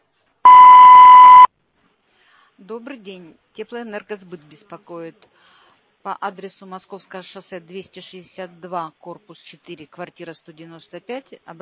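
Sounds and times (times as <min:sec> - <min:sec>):
voicemail beep signal: 0:00.5 - 0:01.5
speech: 0:02.6 - 0:11.5.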